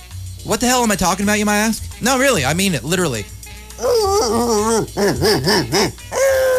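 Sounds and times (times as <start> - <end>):
speech: 0.4 - 6.1
person imitating a dog barking: 3.8 - 6.5.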